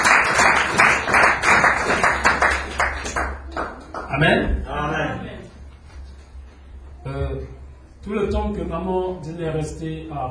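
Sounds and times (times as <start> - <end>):
church congregation clapping in acclaim during worship: 0.0 - 4.3
speech: 4.2 - 5.3, 8.1 - 10.2.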